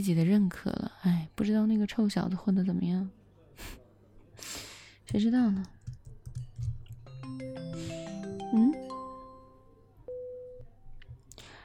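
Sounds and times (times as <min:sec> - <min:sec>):
speech: 0:00.0 - 0:03.8, 0:05.1 - 0:05.8
phone ringtone melody of stepped electronic tones: 0:07.0 - 0:10.8.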